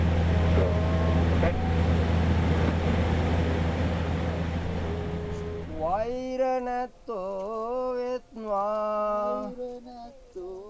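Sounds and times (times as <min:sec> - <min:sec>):
aircraft right engine running while parked during turnaround: 0:00.0 - 0:06.0
speech: 0:06.6 - 0:10.5.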